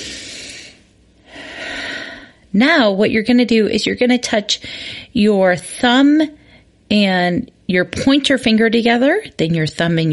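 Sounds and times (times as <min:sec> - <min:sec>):
deep breath in: 0:00.0 - 0:02.4
speech: 0:02.5 - 0:10.1.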